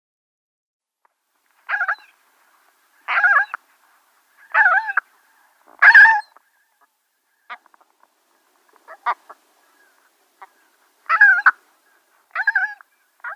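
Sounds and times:
Great skua giving harsh nasal calls at the nest: 0:01.7 - 0:02.1, 0:03.0 - 0:03.6, 0:04.4 - 0:05.1, 0:05.8 - 0:06.5, 0:08.8 - 0:13.3.

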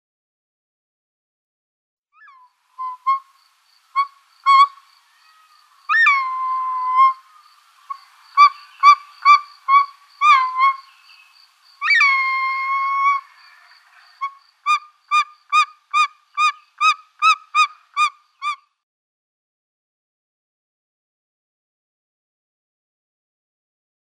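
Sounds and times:
Short-toed snake eagle giving whistled harmonic-rich calls: 0:02.2 - 0:18.6.

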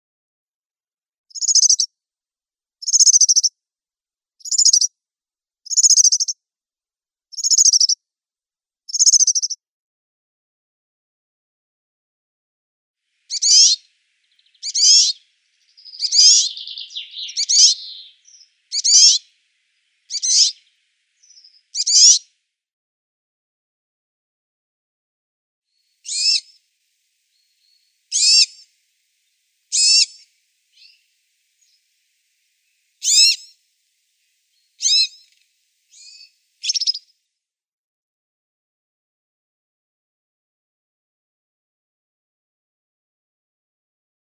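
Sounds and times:
European serin calls: 0:13.3 - 0:13.8, 0:14.4 - 0:15.2, 0:15.8 - 0:19.3, 0:20.1 - 0:20.6, 0:28.1 - 0:28.7, 0:29.7 - 0:31.0, 0:33.0 - 0:33.5, 0:34.8 - 0:37.0.

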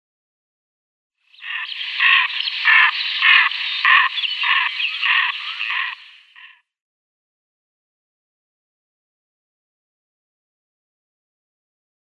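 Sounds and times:
female American Wigeon flight call: 0:01.4 - 0:06.5.

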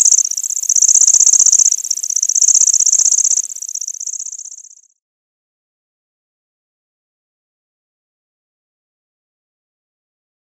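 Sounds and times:
lanceolated warbler reeling trill: 0:00.0 - 0:04.8.

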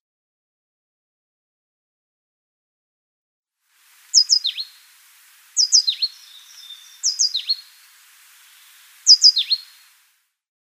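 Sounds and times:
Tenerife blue tit giving high sharp descending notes: 0:04.1 - 0:10.0.

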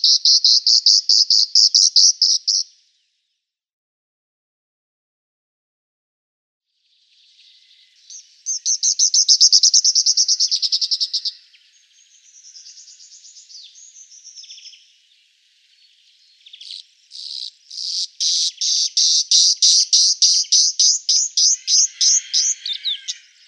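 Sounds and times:
Cyprus wheatear song: 0:00.0 - 0:03.6, 0:06.7 - 0:23.4.

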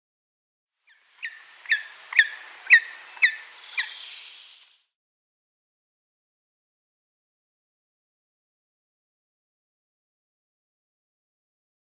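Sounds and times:
grey-headed woodpecker calling: 0:00.9 - 0:04.8.

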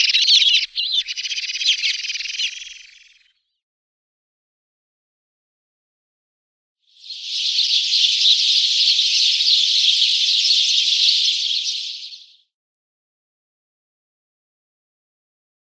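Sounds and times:
house sparrow chirping: 0:00.0 - 0:03.2, 0:07.0 - 0:12.4.

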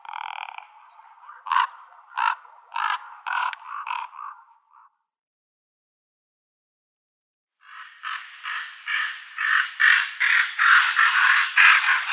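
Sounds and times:
Common raven harsh pulsed croaks: 0:00.0 - 0:05.1, 0:07.6 - 0:12.1.

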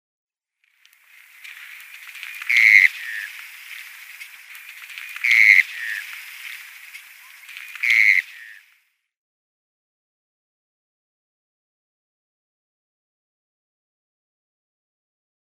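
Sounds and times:
dotterel call: 0:01.0 - 0:08.8.

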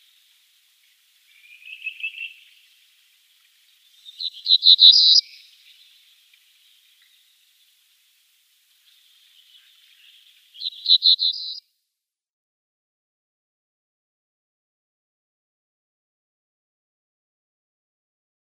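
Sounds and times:
Cinereous bunting singing: 0:01.3 - 0:02.7, 0:03.9 - 0:06.0, 0:09.2 - 0:11.6.

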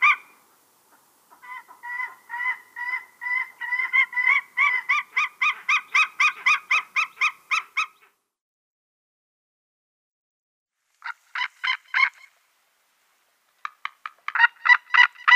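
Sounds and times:
white-tailed eagle calling with sharp yelping notes: 0:00.0 - 0:00.4, 0:01.0 - 0:08.1, 0:11.0 - 0:12.4, 0:13.6 - 0:15.3.

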